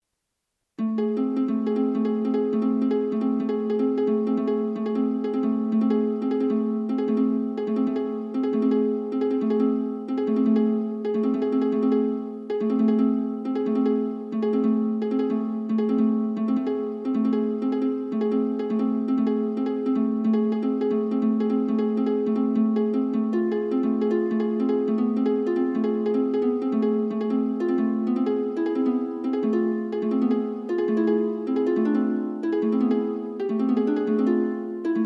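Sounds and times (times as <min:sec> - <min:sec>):
flowing harp: 0:00.8 - 0:35.0.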